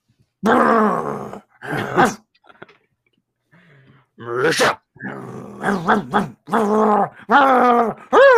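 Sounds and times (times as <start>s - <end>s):
person growling and groaning like a ghost dog: 0.4s - 2.3s, 4.2s - 8.3s.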